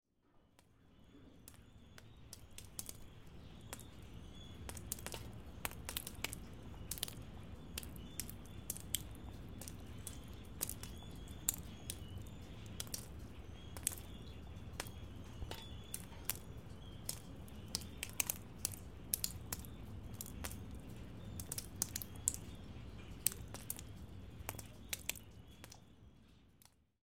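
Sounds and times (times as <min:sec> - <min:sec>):
raindrops: 0:00.5 - 0:26.9.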